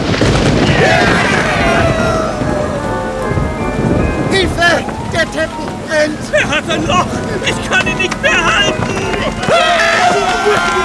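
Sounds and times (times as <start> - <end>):
lightning strike crackling burst: 0.0 - 10.8
rain in a thunderstorm: 0.0 - 10.8
thunder rumbling: 0.0 - 10.8
laughter: 0.6 - 10.8.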